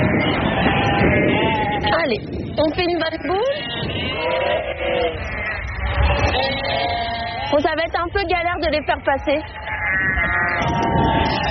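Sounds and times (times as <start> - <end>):
flock of sheep bleating loudly: 0.0 - 11.4
speech: 2.1 - 11.4.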